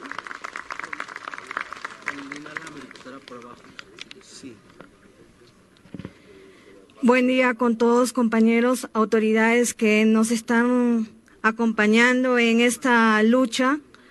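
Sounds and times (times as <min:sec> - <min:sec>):
audience applause: 0:00.0 - 0:04.1
speech: 0:03.1 - 0:05.0, 0:07.0 - 0:13.8.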